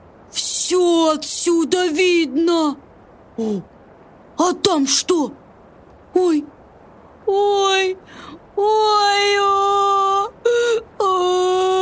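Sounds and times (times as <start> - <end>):
speech: 0.7 - 3.7, 4.4 - 5.4, 6.2 - 6.6, 7.3 - 11.6
child crying in high-pitched wails: 8.7 - 11.8.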